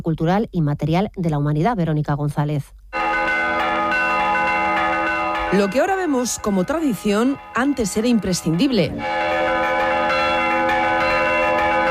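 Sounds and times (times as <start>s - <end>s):
speech: 0.0s - 2.8s, 5.5s - 9.3s
church bells ringing: 2.9s - 11.8s.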